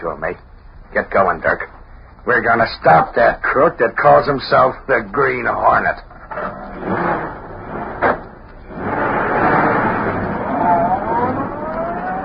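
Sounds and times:
speech: 0.0 - 7.1
steady rush of noise: 0.0 - 12.2
car engine as the car pulls away into the street: 6.4 - 12.2.

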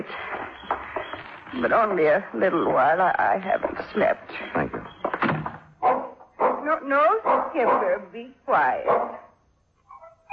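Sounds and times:
speech: 1.5 - 4.8, 6.8 - 9.2
old dog barking: 5.8 - 8.0, 8.8 - 9.4.

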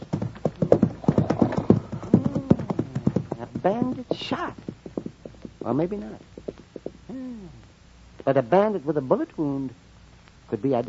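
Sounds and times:
horse with a cart hooves clip-clopping in an Old West ranch setting: 0.0 - 7.0
speech: 3.6 - 4.7, 5.6 - 6.3, 7.1 - 7.6, 8.2 - 9.8, 10.5 - 10.8.

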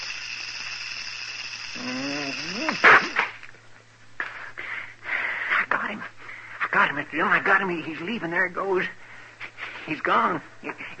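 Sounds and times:
rising voiced whine: 0.0 - 3.4
snake hissing: 0.0 - 3.4
sharp forceful burst: 1.6 - 3.4
speech: 6.8 - 9.0, 9.8 - 10.9.

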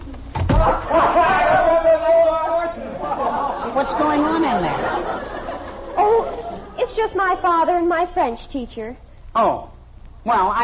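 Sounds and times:
door shutting with a solid thump: 0.3 - 0.8
laughter: 0.6 - 7.5
speech: 3.8 - 5.3, 6.9 - 10.6.

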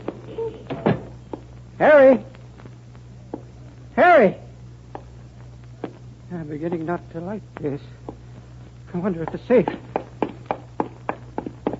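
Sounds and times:
drawn-out creak of door hinges: 0.3 - 1.1
speech: 1.8 - 2.3, 4.0 - 4.4, 6.3 - 8.0, 8.9 - 9.8.

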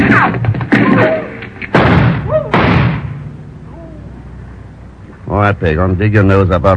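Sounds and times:
loud gunshots fired from the shadows: 0.0 - 3.3
scattered commotion: 0.0 - 5.0
speech: 5.5 - 6.7.

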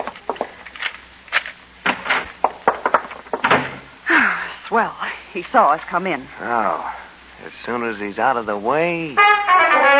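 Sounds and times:
door shutting with a firm thud: 1.8 - 3.9
speech: 4.7 - 9.9.

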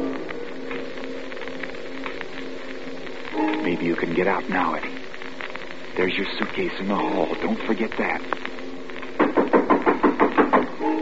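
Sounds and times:
speech: 3.6 - 5.0, 6.0 - 8.6
knocking on a door: 9.2 - 10.7.

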